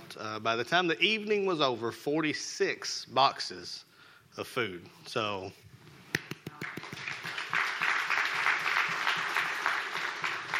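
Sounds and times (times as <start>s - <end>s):
speech: 0.2s - 5.6s
congregation clapping at a Baptist church service: 6.1s - 10.5s.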